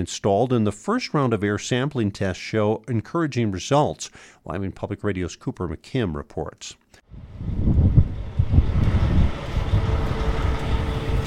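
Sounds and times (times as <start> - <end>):
speech: 0.0 - 6.8
open outdoor ambience on a sunny day after rain: 6.8 - 11.2
mud-covered heavy trucks rumbling and idling pulling into a gas station: 7.3 - 11.2.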